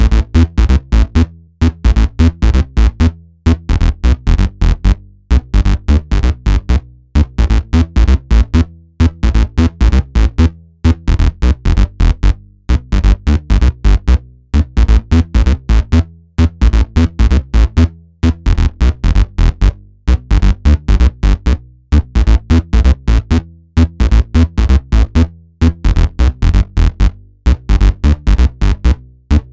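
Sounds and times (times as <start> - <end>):
phat bass line in A minor at 130 BPM: 0.0 - 29.5.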